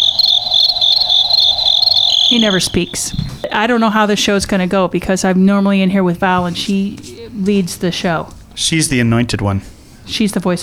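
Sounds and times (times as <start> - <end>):
crickets chirping in a high-pitched trill: 0.0 - 4.0
speech: 2.3 - 10.6.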